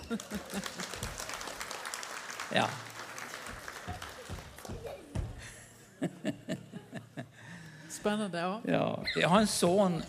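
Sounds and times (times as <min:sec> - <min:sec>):
laughter: 0:00.0 - 0:01.3, 0:03.5 - 0:07.6
small group applauding: 0:00.0 - 0:05.2
speech: 0:00.1 - 0:01.3, 0:02.5 - 0:02.9, 0:08.0 - 0:10.0.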